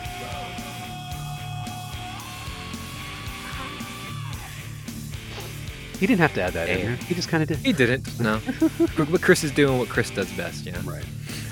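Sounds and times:
rock singer screaming in a song: 0.0s - 4.9s
loud distorted guitars: 0.0s - 11.3s
speech: 6.0s - 11.3s
laughter: 7.5s - 9.4s.

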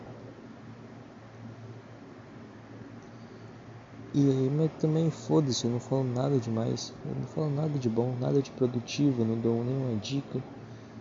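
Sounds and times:
electric fan whirring: 0.0s - 10.9s
speech: 4.1s - 10.6s.

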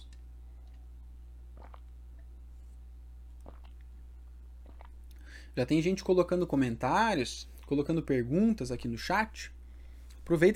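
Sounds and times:
soft mouth clicks and gulps: 0.0s - 2.4s, 3.3s - 4.0s, 4.6s - 5.3s
steady low hum: 0.0s - 10.5s
person sipping water: 1.5s - 2.3s, 3.4s - 4.0s, 4.6s - 5.3s
speech: 5.6s - 9.6s, 10.3s - 10.5s.

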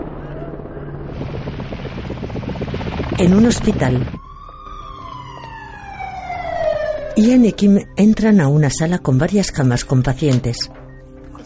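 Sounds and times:
rotor chop from two helicopters approaching and landing in a war zone: 0.0s - 6.6s
speech: 3.2s - 4.2s, 7.2s - 10.8s.

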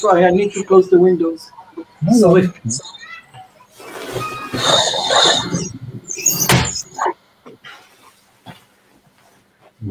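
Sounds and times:
speech: 0.0s - 3.0s
young kindergarten children shrieking and shouting while playing outside: 2.7s - 5.7s.

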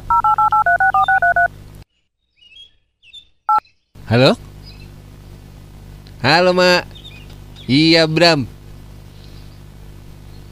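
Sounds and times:
electronic phone keypad dialing beeps: 0.1s - 1.5s
speech: 4.1s - 4.5s, 6.2s - 6.9s, 7.7s - 8.6s.

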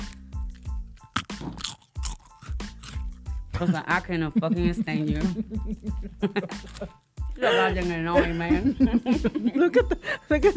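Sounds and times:
oblea wafer candy being bitten and chewed: 0.0s - 3.3s, 6.5s - 7.1s
speech: 1.4s - 1.7s, 3.6s - 10.5s
laughter: 3.6s - 10.5s.

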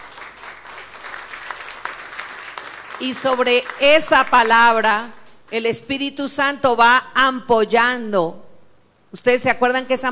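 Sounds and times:
audience applauding: 0.0s - 5.4s
speech: 3.0s - 8.4s, 9.1s - 10.0s.

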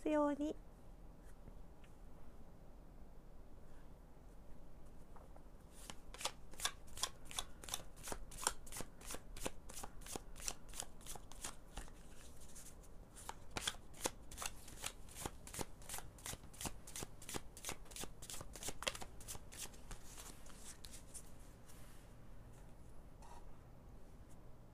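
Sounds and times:
speech: 0.1s - 0.7s
shuffling a deck of oracle cards: 5.7s - 21.3s
soft rustles of oracle cards: 19.7s - 23.0s.

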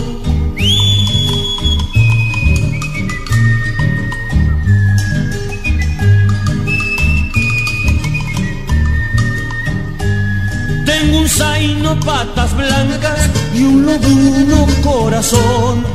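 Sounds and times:
loud instrumental accompaniment with a strummed rhythmic low end: 0.0s - 15.9s
person whistling a slow melody in high notes: 0.3s - 12.2s
speech: 12.0s - 15.9s.

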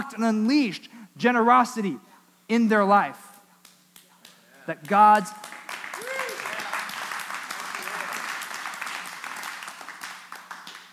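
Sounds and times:
speech: 0.1s - 3.2s, 4.7s - 5.5s
crowd applauding with many hands clapping: 4.2s - 10.9s.

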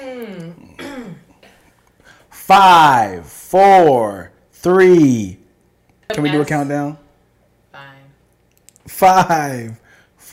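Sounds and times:
person burping into the microphone: 0.0s - 1.4s
speech: 2.5s - 5.4s, 6.1s - 7.0s, 8.9s - 9.8s.

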